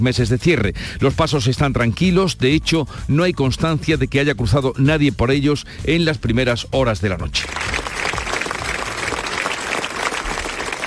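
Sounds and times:
speech: 0.0 - 7.8
dense applause from a sizable crowd: 7.4 - 10.8.

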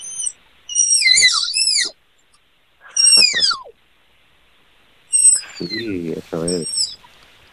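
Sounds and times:
Malayan tapir whistling squeals: 0.0 - 2.0, 2.8 - 3.8, 5.1 - 7.2
speech: 5.6 - 6.8.

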